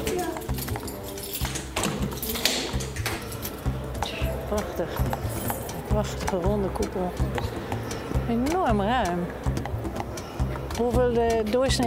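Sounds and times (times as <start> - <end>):
key rattling and turning in the door lock of a prison dome building: 0.0 - 3.7
faint voices murmuring: 0.0 - 11.8
speech: 4.5 - 5.2, 6.0 - 9.5, 10.8 - 11.8.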